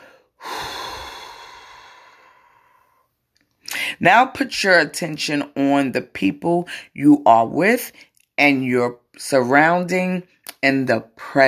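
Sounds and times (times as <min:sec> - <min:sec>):
slow breathing during a guided relaxation exercise: 0:00.0 - 0:03.9
speech: 0:04.0 - 0:11.4.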